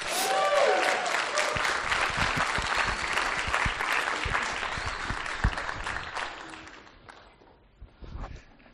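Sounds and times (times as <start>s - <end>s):
people cheering: 0.0s - 7.0s
room full of people clapping: 0.0s - 7.6s.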